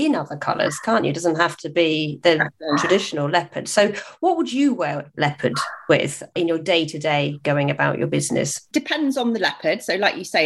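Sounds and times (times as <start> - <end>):
speech: 0.0 - 10.4
dog barking: 2.7 - 3.1, 5.5 - 5.9.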